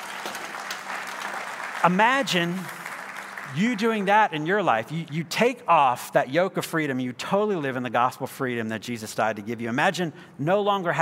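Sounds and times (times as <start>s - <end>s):
crowd applauding: 0.0s - 4.4s
speech: 1.8s - 2.8s, 3.5s - 10.9s.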